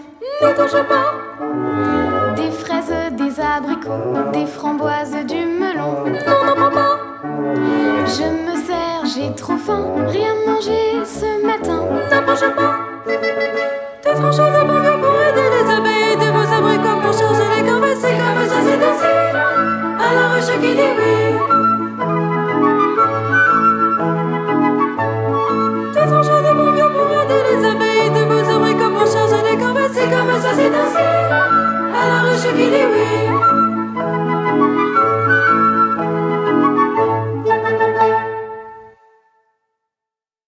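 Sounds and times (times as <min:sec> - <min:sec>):
song: 0:00.3 - 0:39.1.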